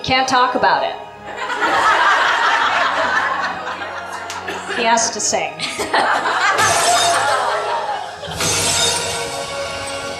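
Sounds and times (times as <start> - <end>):
speech: 0.1 - 2.0, 4.8 - 7.0
laughter: 1.3 - 9.0
glass shattering: 6.6 - 7.4.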